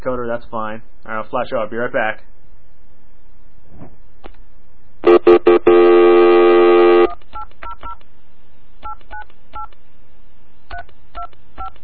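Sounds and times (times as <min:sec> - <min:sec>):
speech: 0:00.0 - 0:02.4, 0:09.0 - 0:10.1, 0:10.8 - 0:11.8
long steady telephone tone: 0:05.0 - 0:07.1.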